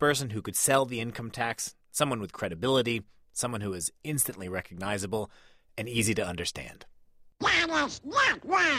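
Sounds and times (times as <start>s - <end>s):
speech: 0.0s - 8.7s
person imitating cartoon duck voice quacking in a 1942 short film: 7.4s - 8.7s.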